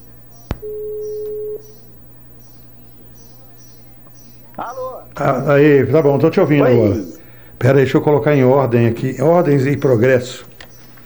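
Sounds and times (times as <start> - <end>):
steady electronic telephone tone on redialing after a dropped call: 0.0 - 4.5
telephone click on redialing after a dropped call: 0.4 - 1.8
laughter: 4.5 - 10.7
speech: 4.6 - 10.5.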